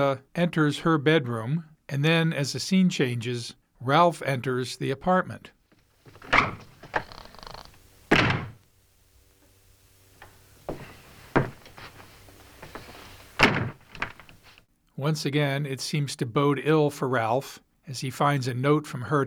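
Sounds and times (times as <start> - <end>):
speech: 0.0 - 5.6, 15.0 - 19.2
door rattles: 6.1 - 8.6, 12.6 - 14.4
doors slamming shut: 6.2 - 8.6, 13.4 - 14.4.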